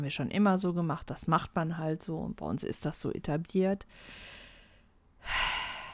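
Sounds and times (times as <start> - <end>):
speech: 0.0 - 4.4, 5.2 - 5.6
heavy exasperated breathing: 3.9 - 5.9.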